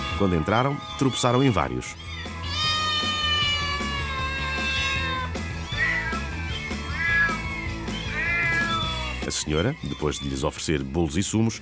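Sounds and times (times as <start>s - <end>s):
speech: 0.2s - 2.1s, 9.5s - 11.6s
several cats meowing in a house: 0.3s - 10.7s.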